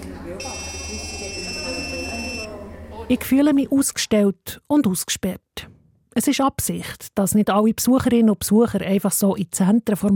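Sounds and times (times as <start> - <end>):
murmur of voices: 0.0 - 3.8
electronic badge reader at a three-arm turnstile beeping: 0.4 - 2.6
speech: 3.1 - 10.1.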